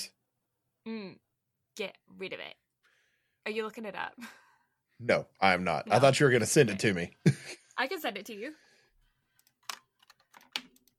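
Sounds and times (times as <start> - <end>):
speech: 0.8 - 1.2, 1.8 - 2.6, 3.4 - 4.4, 5.0 - 8.7
computer keyboard typing: 9.3 - 10.9.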